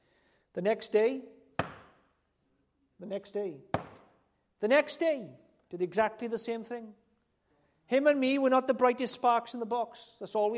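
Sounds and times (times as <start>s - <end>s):
speech: 0.5s - 1.4s, 3.0s - 3.8s, 4.6s - 7.0s, 7.9s - 10.5s
sharp knocks on a wooden surface: 1.6s - 2.0s, 3.7s - 4.1s.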